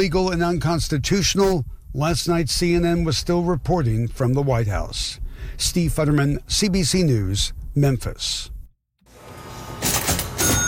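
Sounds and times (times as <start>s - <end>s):
speech: 0.0s - 8.5s
antique custom-made cash register from 1907 ringing in a historic hotel lobby: 9.3s - 10.6s
antique custom-made cash register from 1907 clunking in a historic hotel lobby: 9.6s - 10.6s.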